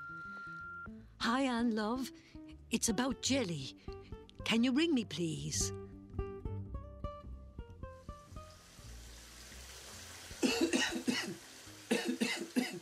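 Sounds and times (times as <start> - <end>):
speech: 1.2 - 5.8
soft running water: 8.1 - 12.7
harsh coughing: 10.4 - 12.7.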